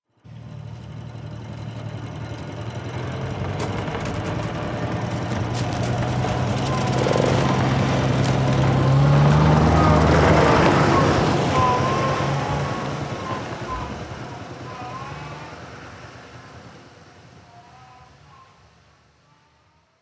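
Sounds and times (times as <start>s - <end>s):
rattly 1980s Jeep backing up on a dirt road: 0.3s - 18.9s
Jeep bumps on a dirt road: 0.5s - 15.0s
branches scraping: 3.0s - 13.1s.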